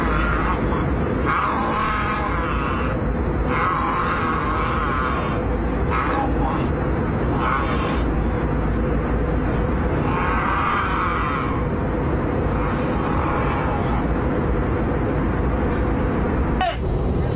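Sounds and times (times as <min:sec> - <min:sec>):
drunk man growling and groaning on an airplane: 0:00.0 - 0:08.6, 0:09.4 - 0:14.3
low rumble of aircraft cabin noise in flight: 0:00.0 - 0:17.3.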